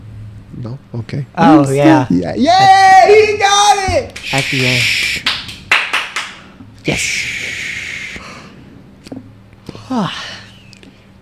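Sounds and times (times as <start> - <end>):
low steady hum: 0.0 - 11.2
speech: 0.6 - 5.3, 6.9 - 7.3, 9.9 - 10.4
person yawning: 7.0 - 8.5, 9.7 - 10.7.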